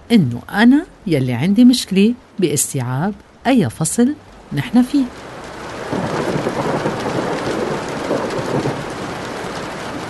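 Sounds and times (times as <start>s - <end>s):
heavy rain downpour: 0.0s - 10.0s
speech: 0.1s - 5.3s, 5.9s - 6.3s
low rolling thunder: 5.7s - 10.0s.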